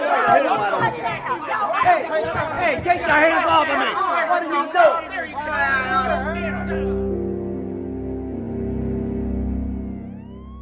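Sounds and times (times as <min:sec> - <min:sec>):
speech: 0:00.3 - 0:07.0
low steady drone and hum: 0:05.2 - 0:10.6
ambulance siren wailing: 0:05.3 - 0:10.6.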